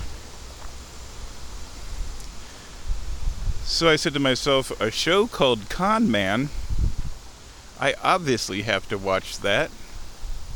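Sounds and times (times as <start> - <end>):
blustery outdoor wind roaring: 2.8 - 7.3, 9.4 - 10.5
speech: 3.7 - 6.6, 7.8 - 9.8.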